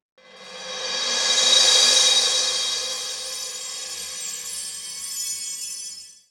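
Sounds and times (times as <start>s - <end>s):
electronic cymbals: 0.2s - 6.1s
cosmic electronic bells: 2.8s - 6.2s.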